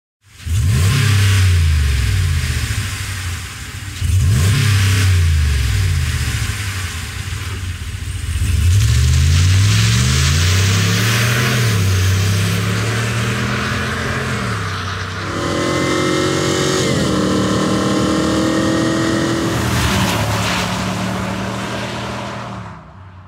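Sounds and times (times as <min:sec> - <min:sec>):
truck engine with a stock exhaust revving: 0:00.4 - 0:03.4, 0:04.0 - 0:23.0.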